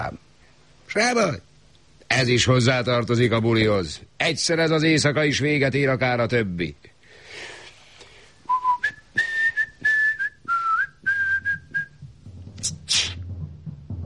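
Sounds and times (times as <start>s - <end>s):
speech: 0.9s - 1.5s, 2.1s - 6.9s
breathy bursts: 7.0s - 8.4s
person whistling a short clear tune: 8.5s - 12.0s
low rumbling background: 11.8s - 14.0s.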